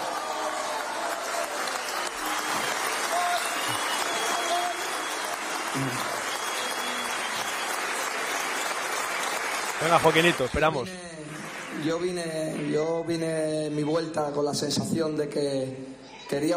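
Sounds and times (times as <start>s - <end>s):
crowd applauding loudly: 0.0s - 12.9s
speech: 5.8s - 6.1s, 9.8s - 11.2s, 11.8s - 16.5s.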